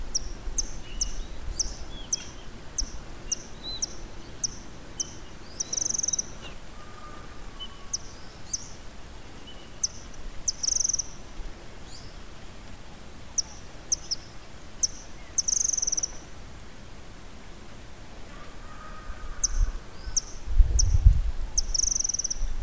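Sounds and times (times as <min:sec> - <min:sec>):
White-throated kingbird: 0:00.1 - 0:08.8, 0:09.4 - 0:11.2, 0:13.3 - 0:16.2, 0:18.3 - 0:21.0, 0:21.6 - 0:22.5.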